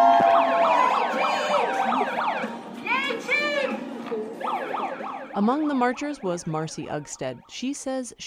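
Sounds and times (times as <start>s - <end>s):
electronic siren blasting from a sound effects megaphone on a bar deck: 0.2s - 2.6s, 4.4s - 7.6s
speech: 5.5s - 8.2s.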